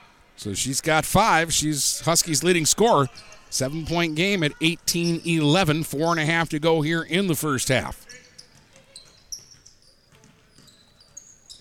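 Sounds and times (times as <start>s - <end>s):
speech: 0.4s - 8.2s
basketball dribbled on court during a girls' high school basketball game: 8.2s - 11.6s.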